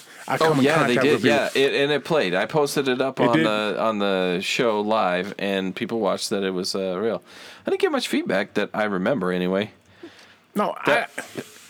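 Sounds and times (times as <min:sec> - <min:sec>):
speech: 0:00.3 - 0:09.8, 0:10.6 - 0:11.6
person clearing throat: 0:10.0 - 0:11.6
person coughing: 0:10.0 - 0:11.6.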